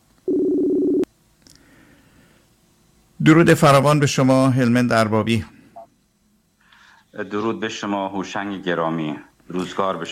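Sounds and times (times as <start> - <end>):
telephone ringing tone over the line: 0.3 - 1.1
speech: 3.2 - 5.6, 7.2 - 10.1.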